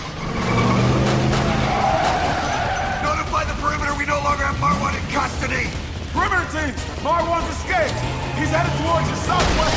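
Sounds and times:
getaway car engine roaring as it speeds off during a shootout: 0.0s - 2.6s
getaway car tires skidding: 0.0s - 9.7s.

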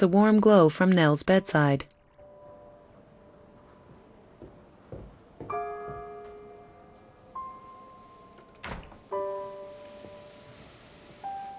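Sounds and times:
speech: 0.0s - 2.0s
gentle sustained music: 0.0s - 11.5s
soft knocks and bumps: 3.6s - 6.4s
door thudding shut: 8.4s - 9.2s.

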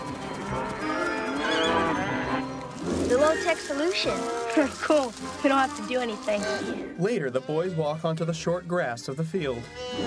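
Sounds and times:
cows mooing in a grassy field: 0.3s - 6.8s, 9.7s - 10.0s
speech: 3.3s - 10.0s.

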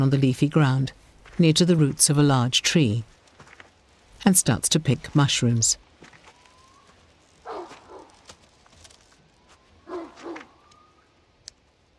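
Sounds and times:
speech: 0.0s - 3.2s, 4.2s - 5.8s
steady outdoor hiss in woodland: 0.0s - 11.9s
dog on a leash barking in woodland: 7.4s - 8.2s, 9.9s - 10.6s.

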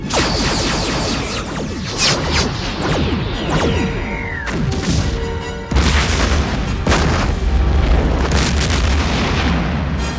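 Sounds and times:
falling sweeping tone: 0.1s - 5.7s
whooshing bursts: 0.1s - 6.8s
quantum torpedoes firing in a science fiction scene: 0.1s - 8.8s
booming blasts: 0.1s - 10.0s
heavy low rumble: 1.0s - 8.7s.

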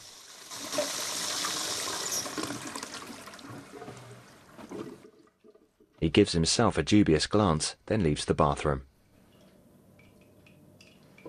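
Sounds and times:
water running from a bathroom tap while hands are washed: 0.0s - 4.0s
speech: 6.0s - 8.9s.

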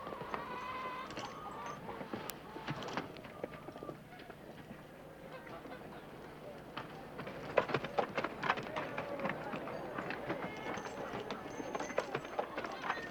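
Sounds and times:
tiny donkey hooves trotting on a hard surface: 0.0s - 4.9s, 6.6s - 13.1s
busy murmur of voices and activity: 4.9s - 13.1s.

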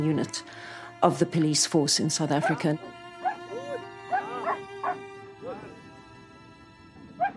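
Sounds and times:
speech: 0.0s - 3.0s
Alsatian police dogs barking in South Africa: 2.4s - 5.8s, 7.2s - 7.3s.

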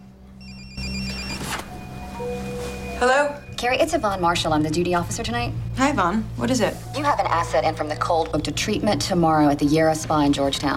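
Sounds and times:
telephone ringing with a bright electronic trilling tone: 0.4s - 2.0s
speech: 2.3s - 10.7s.

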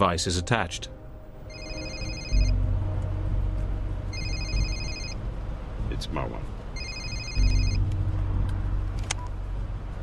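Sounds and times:
speech: 0.0s - 1.0s, 6.0s - 6.6s
car engine rumble while driving to a train station: 1.0s - 10.0s
cell phone with signal scrambling device ringing with electronic trills: 1.5s - 2.6s, 4.1s - 5.2s, 6.8s - 7.8s.

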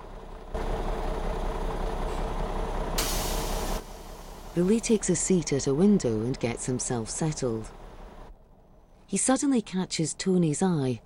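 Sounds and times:
bus engine idling: 0.0s - 11.0s
bus air brakes hissing: 3.0s - 4.6s
speech: 4.6s - 7.8s, 9.1s - 11.0s.

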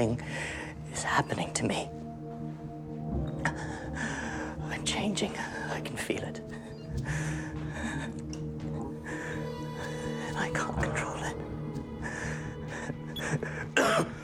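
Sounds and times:
speech: 0.0s - 2.0s, 5.0s - 8.2s
steady low droning musical background: 0.0s - 14.2s
man coughing and clearing his throat: 13.8s - 14.2s.

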